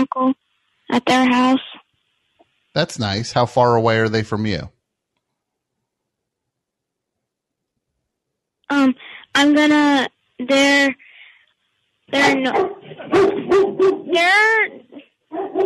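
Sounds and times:
speech: 0.0s - 0.4s, 1.0s - 1.7s, 2.8s - 4.8s, 8.7s - 11.1s, 12.1s - 15.6s
pet dog barking, yipping and whining: 12.1s - 15.6s.

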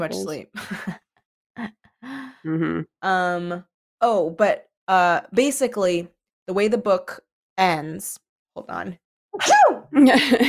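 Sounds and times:
speech: 0.0s - 1.0s, 1.6s - 1.8s, 2.4s - 10.4s
person sneezing: 9.4s - 9.8s.

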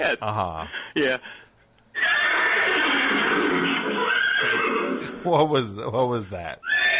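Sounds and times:
speech: 0.0s - 1.4s, 5.0s - 6.9s
electronic horse whinny from a toy laser horse whip: 2.0s - 5.2s, 6.6s - 6.9s.

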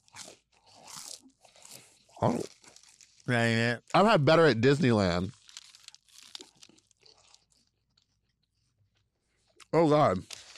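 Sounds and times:
biting into a footlong cinnamon-sugar churro: 0.0s - 3.2s, 5.3s - 7.6s
crunchy chewing of a cinnamon-sugar churro: 0.0s - 3.3s, 5.2s - 8.3s
speech: 2.2s - 2.5s, 3.3s - 5.4s, 9.7s - 10.5s.

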